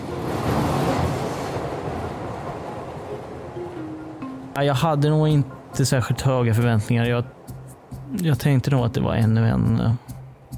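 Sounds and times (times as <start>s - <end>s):
subway train in motion heard from inside the car: 0.0s - 4.4s
speech: 4.6s - 7.4s, 8.1s - 10.1s.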